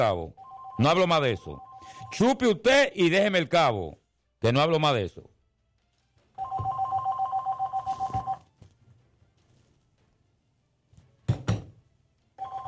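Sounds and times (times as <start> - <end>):
speech: 0.0 - 5.3
telephone ringing with an incoming call: 0.4 - 2.4, 6.4 - 8.5, 12.4 - 12.6.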